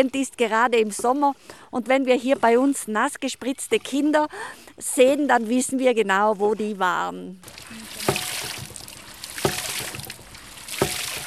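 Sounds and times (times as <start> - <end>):
speech: 0.0 - 8.1
hydraulic ram pump splashing and gushing water: 7.4 - 11.2.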